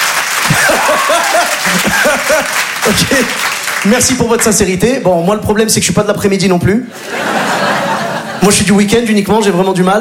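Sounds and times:
live audience clapping in a hall during a comedy show: 0:00.0 - 0:04.8
laughter: 0:00.4 - 0:03.4, 0:06.9 - 0:08.9
speech: 0:01.7 - 0:07.3, 0:08.4 - 0:10.0.

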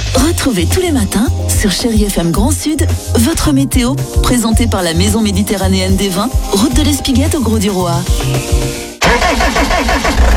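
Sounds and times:
speech: 0:00.4 - 0:10.3
old car engine starting: 0:09.0 - 0:10.3.

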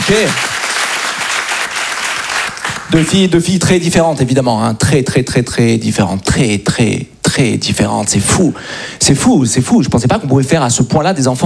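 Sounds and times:
stand-up comedy audience applause: 0:00.0 - 0:03.1
speech: 0:00.1 - 0:00.5, 0:02.9 - 0:11.4.

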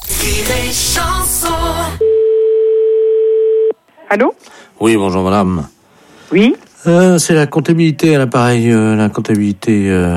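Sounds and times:
speech: 0:00.2 - 0:02.1, 0:04.1 - 0:10.1
telephone dial tone while calling back: 0:02.0 - 0:03.8.

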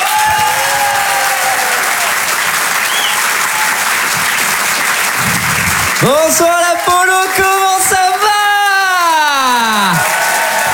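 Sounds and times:
audience at a live comedy show applauding and cheering: 0:00.0 - 0:10.7
speech: 0:06.0 - 0:08.0.

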